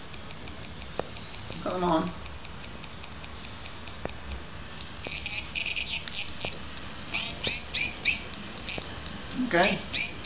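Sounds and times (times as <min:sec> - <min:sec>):
speech: 0:01.6 - 0:02.2, 0:09.5 - 0:09.9
bird chirping in high-pitched trills: 0:05.1 - 0:06.3, 0:07.1 - 0:08.8, 0:09.9 - 0:10.2.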